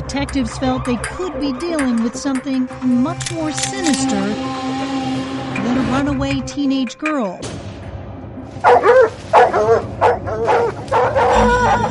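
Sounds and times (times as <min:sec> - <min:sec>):
speech: 0:00.1 - 0:05.0, 0:05.7 - 0:07.7, 0:08.6 - 0:10.5
cadaver dogs barking: 0:08.6 - 0:11.8.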